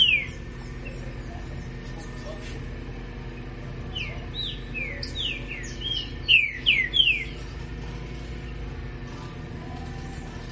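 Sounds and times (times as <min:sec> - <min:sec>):
green-winged saltator whistling song: 0:00.0 - 0:02.2, 0:03.3 - 0:07.5
steady low hum: 0:00.0 - 0:10.5.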